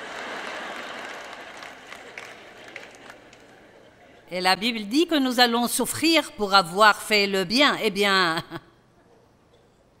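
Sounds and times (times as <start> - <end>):
audience applauding: 0.0 - 3.8
speech: 4.3 - 8.6.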